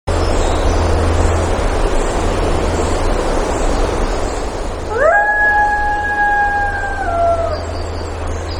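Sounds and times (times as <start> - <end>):
constant rushing background noise: 0.1 - 8.5
coyote howl at Lake Clark in Alaska: 4.9 - 8.2.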